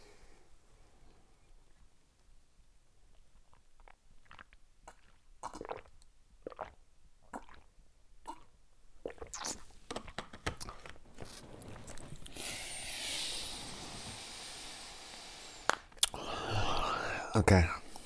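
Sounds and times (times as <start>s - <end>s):
faint hiss: 0.0s - 18.0s
person sipping a beverage: 3.1s - 17.3s
speech: 17.4s - 17.8s.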